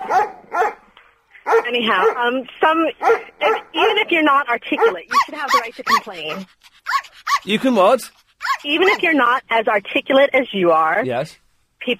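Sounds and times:
dog barking: 0.0 - 2.4, 3.0 - 7.6, 8.4 - 9.1
speech: 1.7 - 6.8, 7.4 - 11.9.

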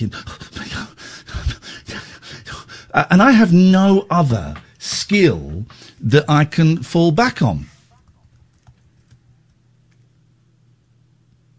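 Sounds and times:
speech: 0.0 - 0.3, 3.0 - 7.7
steady low hum: 0.0 - 11.5
quiet quick typing on a keyboard: 8.0 - 9.2.

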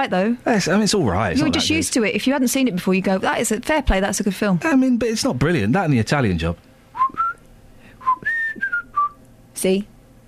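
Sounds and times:
speech: 0.0 - 7.2, 9.6 - 9.9
person whistling a short tune: 7.0 - 7.4, 8.0 - 9.2.

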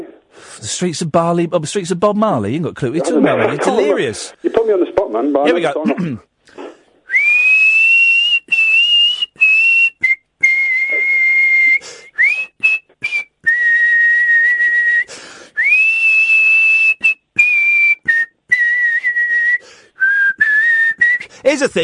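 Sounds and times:
person taking short breaths: 0.3 - 0.7, 6.5 - 7.0, 11.8 - 12.1, 15.1 - 15.6, 19.6 - 20.0, 21.3 - 21.5
speech: 0.6 - 6.6, 21.6 - 21.8
person whistling a melody: 7.1 - 21.3.

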